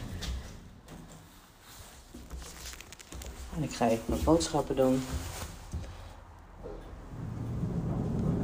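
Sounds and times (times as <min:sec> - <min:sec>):
speech: 0:03.6 - 0:05.3
elevator doors sliding open and shut: 0:06.6 - 0:08.4.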